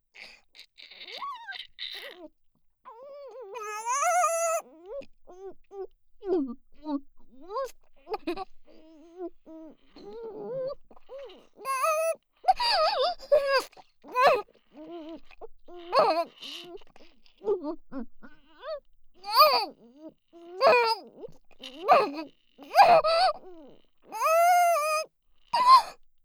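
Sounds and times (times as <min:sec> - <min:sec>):
forced oral sex sounds: 0:03.6 - 0:04.6, 0:11.7 - 0:14.4, 0:15.9 - 0:16.3, 0:19.3 - 0:19.7, 0:20.6 - 0:21.0, 0:21.9 - 0:23.4, 0:24.2 - 0:25.0, 0:25.6 - 0:26.0.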